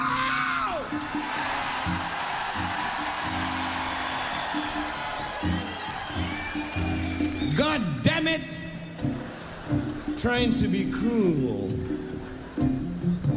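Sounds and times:
large concert crowd roaring and cheering: 0.0 - 10.2
speech: 0.9 - 2.8, 10.2 - 12.1
high whistles from a concert crowd: 3.2 - 7.8.

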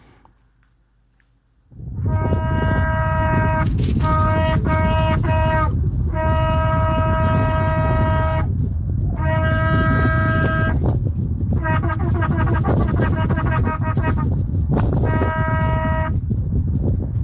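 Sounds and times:
low wind rumble in the microphone outdoors: 1.7 - 17.2
shofar ram's horn blasts on the Mount of Olives: 1.8 - 16.3.

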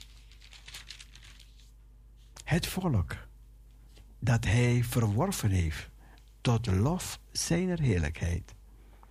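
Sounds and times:
thin paper page turning: 0.0 - 2.4
speech: 2.5 - 3.3, 4.2 - 8.6.

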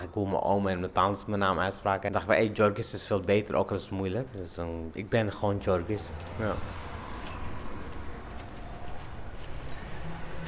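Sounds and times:
speech: 0.2 - 6.8
house keys jangling: 6.1 - 10.4.

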